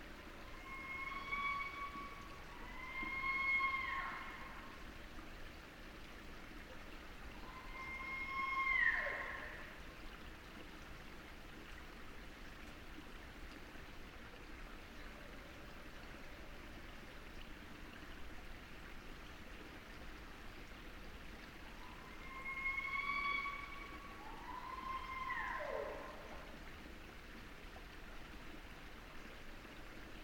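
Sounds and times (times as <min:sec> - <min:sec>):
barred owl screaming: 0:00.5 - 0:04.6, 0:07.5 - 0:09.6, 0:21.9 - 0:26.3.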